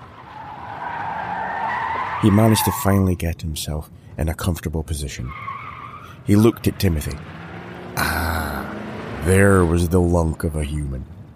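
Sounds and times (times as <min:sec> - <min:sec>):
car tires screeching around corners on a dark street: 0:00.0 - 0:03.1, 0:05.1 - 0:10.1
speech: 0:02.2 - 0:05.6, 0:06.2 - 0:07.4, 0:09.2 - 0:11.2.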